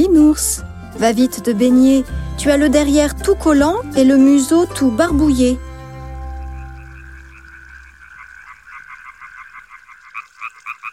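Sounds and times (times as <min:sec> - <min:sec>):
speech: 0:00.3 - 0:05.7
frogs and toads croaking among river reeds: 0:05.6 - 0:10.9
river water lapping: 0:05.6 - 0:10.9.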